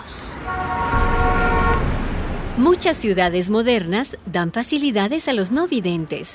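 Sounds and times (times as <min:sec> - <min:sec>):
busy traffic noise on an avenue with many cars: 0:00.0 - 0:06.3
car horn blaring in busy traffic: 0:00.3 - 0:03.1
speech: 0:02.6 - 0:06.3.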